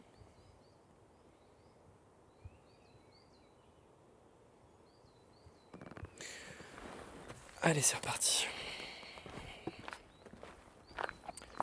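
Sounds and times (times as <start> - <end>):
speech: 7.6 - 8.6
footsteps walking in the Pyrenees mountains: 8.7 - 11.6.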